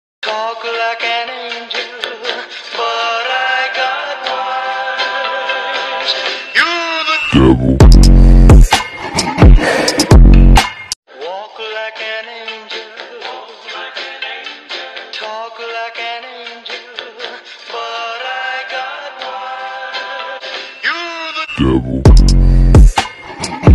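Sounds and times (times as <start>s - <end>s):
theme song remix: 3.8s - 11.0s, 18.4s - 23.7s.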